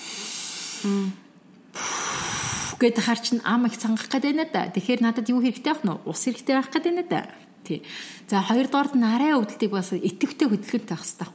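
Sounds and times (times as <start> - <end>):
speech: 0.8 - 1.2, 2.8 - 11.3
deep exhalation through the mouth with relaxed lips as a labour breathing technique: 1.8 - 2.8.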